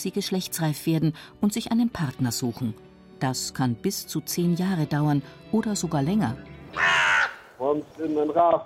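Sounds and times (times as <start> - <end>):
speech: 0.0 - 7.1, 7.7 - 8.6
crow cawing: 6.7 - 7.6.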